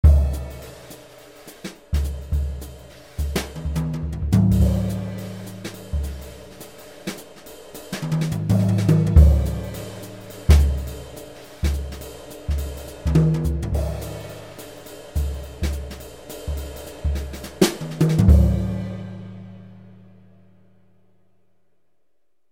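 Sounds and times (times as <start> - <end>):
dynamic brush drum kit on a sound module: 0.0 - 20.2.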